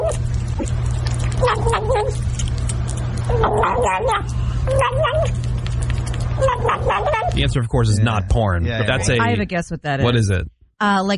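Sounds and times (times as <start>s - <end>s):
kitten making warbling gobbling growls while eating food: 0.0s - 7.4s
steady low hum: 0.0s - 10.5s
speech: 1.4s - 2.3s, 3.4s - 5.4s, 6.4s - 11.1s.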